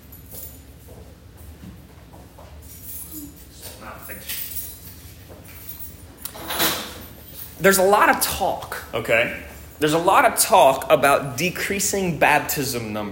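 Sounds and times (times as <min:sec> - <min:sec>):
bunch of keys jingling as handed over: 0:02.6 - 0:07.6, 0:09.4 - 0:09.9
speech: 0:03.8 - 0:04.5, 0:07.6 - 0:13.1.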